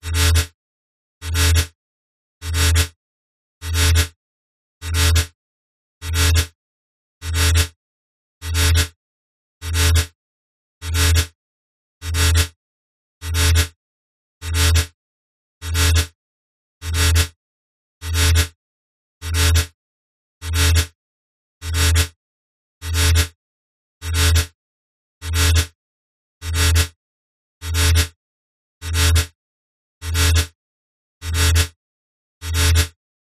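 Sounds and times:
slow emergency alarm warning buzz: 0.0s - 0.6s, 1.2s - 1.8s, 2.4s - 3.0s, 3.6s - 4.1s, 4.8s - 5.3s, 6.0s - 6.5s, 7.2s - 7.8s, 8.4s - 8.9s, 9.6s - 10.1s, 10.8s - 11.3s, 12.0s - 12.5s, 13.2s - 13.7s, 14.4s - 14.9s, 15.6s - 16.1s, 16.8s - 17.3s, 18.0s - 18.5s, 19.2s - 19.7s, 20.4s - 20.9s, 21.6s - 22.1s, 22.8s - 23.3s, 24.0s - 24.6s, 25.2s - 25.7s, 26.4s - 26.9s, 27.6s - 28.1s, 28.8s - 29.4s, 30.0s - 30.5s, 31.2s - 31.7s, 32.4s - 32.9s.

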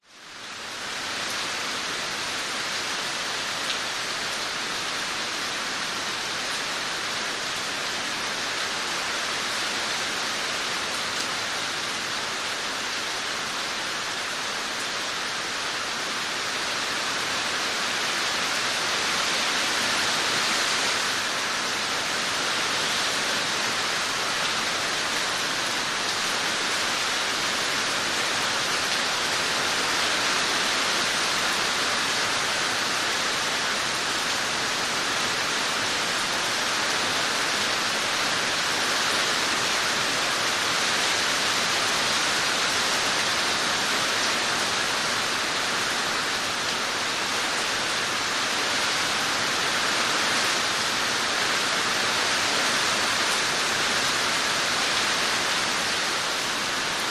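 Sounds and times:
heavy rain storm on a roof outdoors: 0.0s - 57.0s.

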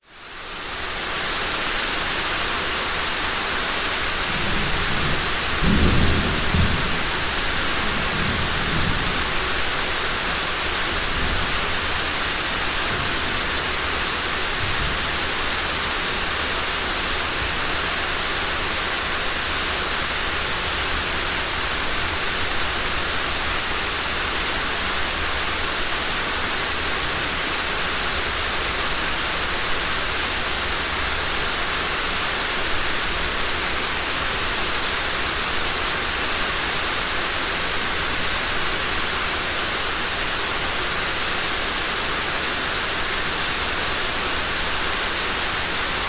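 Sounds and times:
heavy rain on warehouse roof: 0.0s - 46.0s
thunder: 4.3s - 9.8s.

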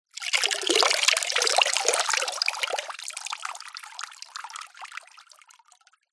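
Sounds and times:
sudden fast water drips into shallow water: 0.1s - 6.1s.

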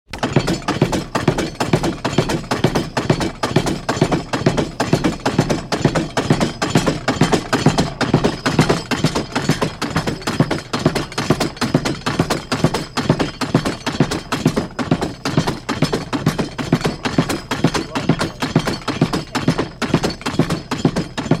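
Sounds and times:
industrial machine pounding: 0.1s - 21.3s.

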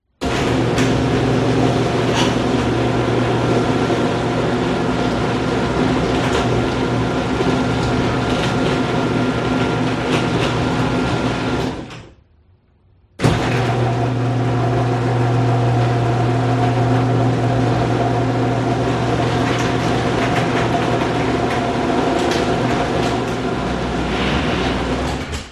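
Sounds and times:
household electric garage door opening and closing: 0.1s - 12.3s, 13.2s - 25.5s.

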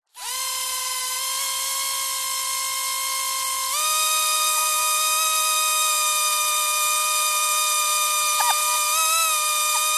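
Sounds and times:
drone micro motor whirr burst: 0.1s - 9.9s.

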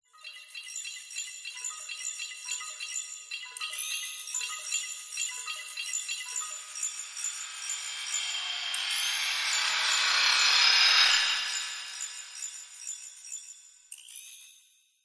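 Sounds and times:
futuristic technology factory ambience: 5.2s - 13.2s
sci fi mechanical sound: 5.9s - 13.0s.

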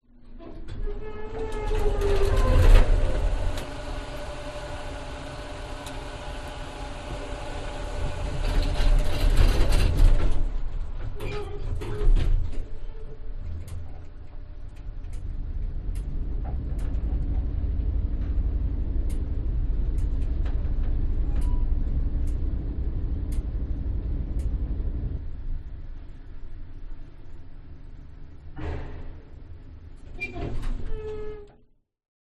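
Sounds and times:
industrial elevator doors closing: 0.2s - 14.7s, 15.9s - 23.0s, 28.6s - 31.6s
industrial elevator ride: 0.2s - 28.5s.

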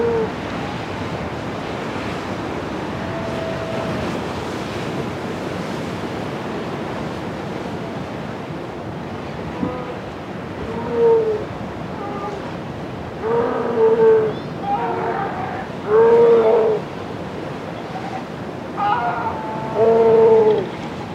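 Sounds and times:
sea lions calling on rocks beside the Pacific Ocean in Chile: 0.0s - 1.2s, 2.5s - 4.3s, 9.4s - 21.1s.

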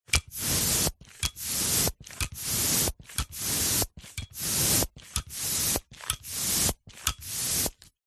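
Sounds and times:
football hand pump pumping: 0.1s - 7.9s.

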